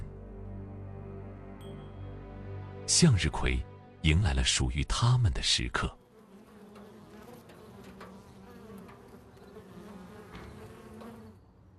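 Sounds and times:
speech: 2.9 - 6.0
many honeybees buzzing in a sunflower field: 6.0 - 11.7.

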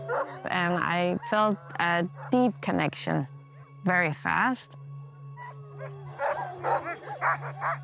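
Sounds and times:
pack of sled dogs barking yowling and howling: 0.0 - 2.4, 5.4 - 7.8
steady low hum: 0.0 - 7.8
speech: 0.7 - 4.8, 6.6 - 7.8.

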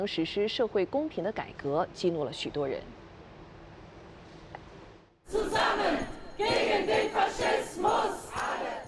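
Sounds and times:
speech: 0.0 - 3.0
large protest crowd chanting anti-fascist slogans: 5.3 - 8.8.

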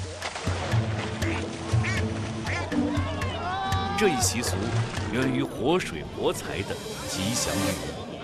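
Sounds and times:
ducks quacking during a Dragon Boat Festival duck-grabbing contest: 1.0 - 3.0
indistinct voices: 3.3 - 8.2
speech: 4.0 - 8.0.

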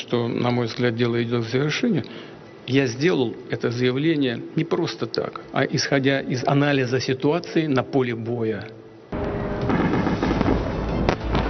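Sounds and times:
speech: 0.1 - 8.8
air-raid sirens: 9.2 - 11.4
explosions in Kyiv at night: 9.2 - 11.4
sharper explosion blasts: 9.2 - 11.4.

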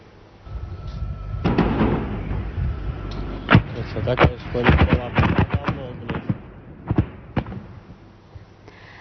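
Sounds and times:
low rumbling: 0.4 - 8.6
booming explosions from missile strikes: 1.1 - 8.0.

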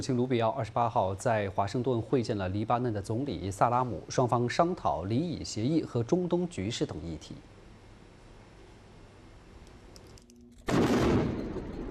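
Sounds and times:
speech: 0.0 - 7.6
heavy explosion from airstrike bombing: 10.7 - 11.8.

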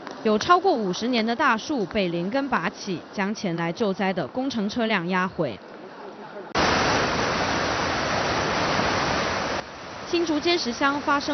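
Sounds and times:
speech: 0.2 - 5.8, 10.1 - 11.3
strong typhoon wind roaring and buffeting the microphone: 6.6 - 10.2.

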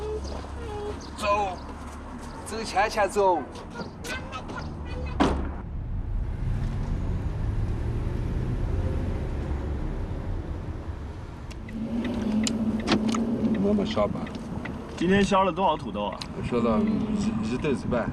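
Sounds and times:
road noise: 0.0 - 18.1
speech: 2.5 - 4.0, 13.8 - 14.4, 15.0 - 18.1
car engine rumbling as the vehicle pulls away: 4.3 - 18.1.

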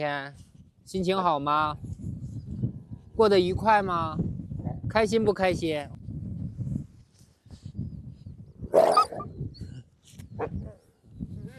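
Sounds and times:
speech: 0.0 - 2.0, 3.2 - 6.0, 10.4 - 10.8
wolf barking sharply: 8.7 - 9.2, 10.4 - 10.8
wolf yelping: 8.7 - 9.3.

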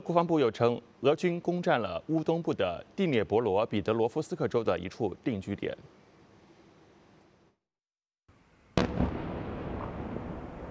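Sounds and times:
speech: 0.0 - 6.0
low noise: 0.0 - 7.6, 8.3 - 10.7
loud explosion with deep rumble during missile strike on city: 8.8 - 10.7.

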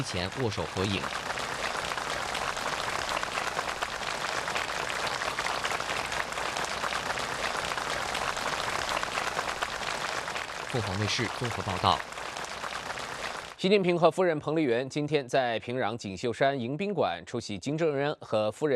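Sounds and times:
speech: 0.0 - 1.3, 10.7 - 12.1, 13.6 - 18.7
crowd applauding warmly: 0.0 - 13.6.

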